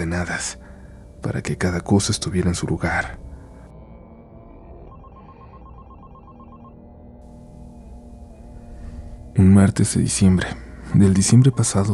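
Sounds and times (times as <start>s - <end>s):
speech: 0.1s - 0.6s, 1.2s - 3.2s, 9.4s - 11.9s
telephone ringing with a bright electronic trill: 4.9s - 8.4s, 11.2s - 11.9s.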